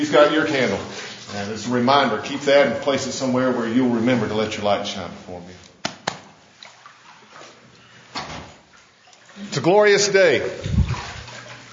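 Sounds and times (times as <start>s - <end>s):
water sloshing in a baptismal pool at a church baptism: 0.0s - 4.8s, 5.8s - 11.7s
speech: 0.0s - 5.6s, 9.4s - 10.8s.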